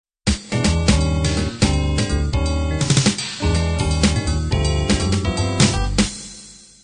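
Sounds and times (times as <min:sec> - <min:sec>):
B3 organ jazz intro: 0:00.5 - 0:06.1.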